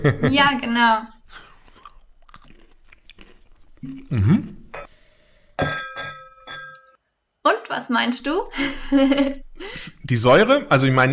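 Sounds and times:
laughter: 0.0 - 0.7, 8.5 - 10.6
speech: 0.0 - 1.2, 3.8 - 4.9, 7.4 - 11.1
fruity nut seasoned with lemon powder and lemon myrtle cracking when bitten: 1.6 - 3.8.

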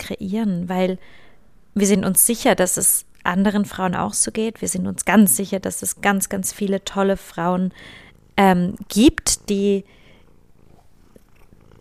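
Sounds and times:
speech: 0.1 - 1.2, 1.8 - 10.0
domestic cat purring: 4.6 - 11.7.

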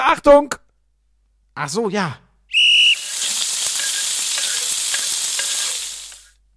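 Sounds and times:
speech: 0.1 - 0.6, 1.6 - 2.7
food sizzling in a hot pan: 2.6 - 6.4.

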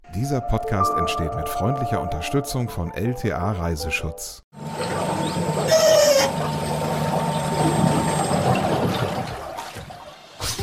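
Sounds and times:
speech: 0.2 - 4.7
electric whisper boat humming in Holland: 4.6 - 9.7
water swishing and lapping against an electric whisper boat in Holland: 4.6 - 10.6.

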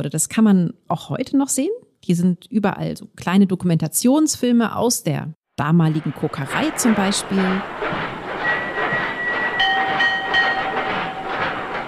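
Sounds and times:
speech: 0.0 - 8.2
loaded mine carts rumbling along rails onto a blast furnace top at an ironworks: 5.7 - 11.8
mine carts clattering: 5.9 - 11.8
mine cart metallic wheel squeals: 7.4 - 11.8.

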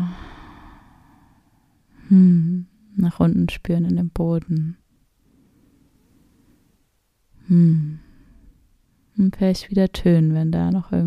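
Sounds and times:
deep breath: 0.0 - 2.3, 5.2 - 6.8, 7.4 - 8.7
speech: 2.1 - 4.8, 7.5 - 8.0, 9.2 - 11.0.

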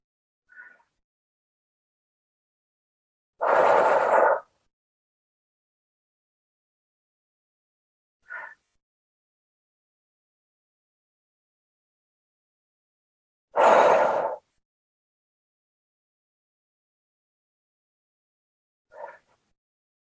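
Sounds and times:
deep belly breaths in and out during a seated relaxation exercise: 0.5 - 1.0, 3.4 - 4.7, 13.6 - 14.6.

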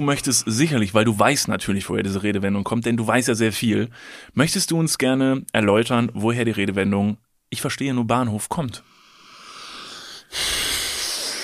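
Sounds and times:
speech: 0.0 - 8.9
long heavy snorting breath drawn in forcefully: 8.9 - 11.4.

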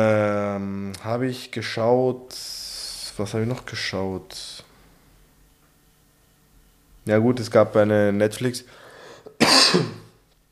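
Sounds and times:
speech: 1.0 - 2.6, 3.2 - 4.7, 7.1 - 8.8, 9.4 - 10.0
harsh cough: 9.3 - 10.2.

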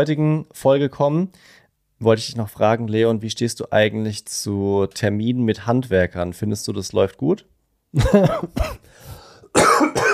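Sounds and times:
speech: 0.0 - 9.7
harsh throaty rasping cough: 8.0 - 10.1.

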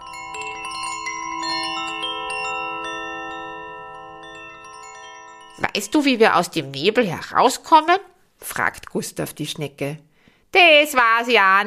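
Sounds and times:
small bells jingling: 0.0 - 7.3
speech: 5.7 - 11.6.

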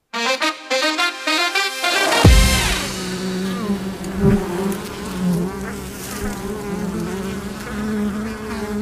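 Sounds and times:
plucked tones: 0.0 - 5.7
wild bees buzzing: 0.2 - 8.8.

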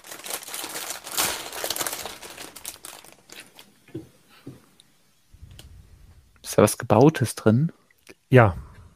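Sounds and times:
plastic bag of LEGO parts crinkling as it is opened: 0.0 - 3.7
speech: 6.6 - 8.7.

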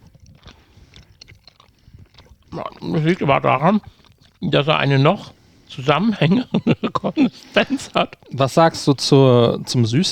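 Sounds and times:
faint bites into a mochi ball: 0.0 - 4.4
soft sticky chewing of a mochi ball with rice-dough filling: 0.0 - 5.4
speech: 2.5 - 10.1
laughter: 5.8 - 8.2.

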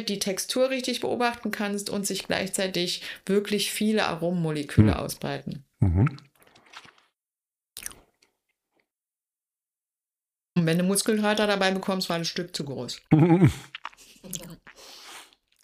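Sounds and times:
speech: 0.0 - 6.3, 10.6 - 15.0
wet mouth sounds of tongue pressing soft cheese against the palate: 5.8 - 7.1, 7.8 - 8.3, 13.1 - 15.6.

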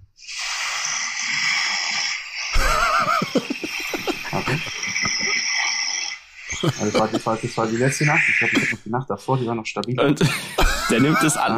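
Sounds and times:
long breathy hiss of air in a sleep-tracking app recording: 0.0 - 8.8
rough fluttering snore with a wavering vibrating tone: 0.3 - 8.0
laughter: 2.6 - 5.4, 6.5 - 8.7, 10.1 - 11.5
speech: 6.6 - 11.5.

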